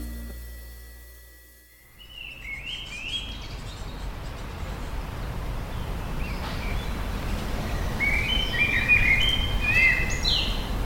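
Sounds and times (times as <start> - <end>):
birds singing and chirping in a garden: 1.9 - 10.8.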